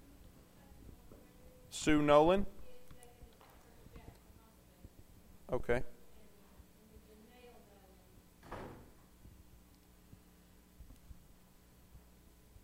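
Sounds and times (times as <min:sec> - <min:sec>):
speech: 0:01.8 - 0:02.6, 0:05.5 - 0:06.0
door swinging shut with a soft thud during a prayer meeting: 0:08.4 - 0:09.0.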